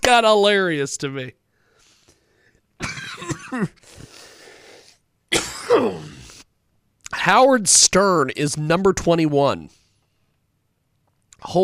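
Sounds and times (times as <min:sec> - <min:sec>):
speech: 0:00.1 - 0:01.4, 0:02.8 - 0:04.1, 0:05.7 - 0:06.2, 0:07.1 - 0:09.8, 0:11.4 - 0:11.6
person coughing harshly: 0:02.8 - 0:04.2, 0:05.3 - 0:06.4.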